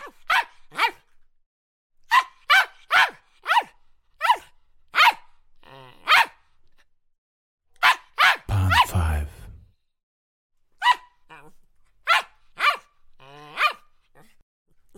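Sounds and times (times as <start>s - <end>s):
poodle barking sharp high yappy barks: 0.0s - 1.1s, 2.1s - 5.3s, 5.9s - 6.4s, 7.8s - 8.8s, 10.8s - 11.4s, 12.0s - 14.4s.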